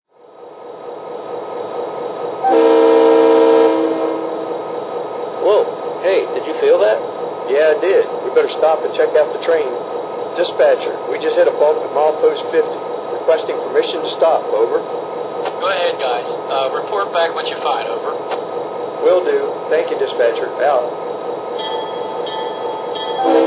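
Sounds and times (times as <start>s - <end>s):
SD40-2 diesel locomotive: 0.1s - 23.4s.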